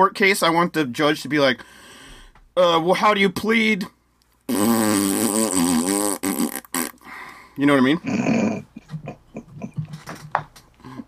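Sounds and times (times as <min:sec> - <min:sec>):
speech: 0:00.0 - 0:01.8, 0:02.6 - 0:05.1, 0:07.6 - 0:09.0
fart noise: 0:04.5 - 0:07.0.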